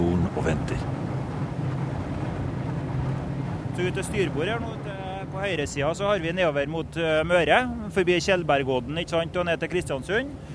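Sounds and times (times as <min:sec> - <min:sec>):
500-horsepower boat engine running on the Trondheimsfjord: 0:00.0 - 0:10.5
speech: 0:00.4 - 0:00.9, 0:03.8 - 0:04.8, 0:05.4 - 0:10.4.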